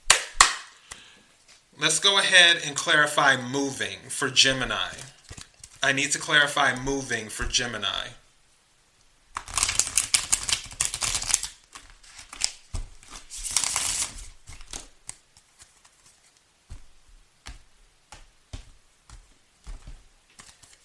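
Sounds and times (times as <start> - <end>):
speech: 1.8 - 5.2, 5.8 - 8.2
tarot deck being shuffled: 4.5 - 5.8, 9.4 - 20.8.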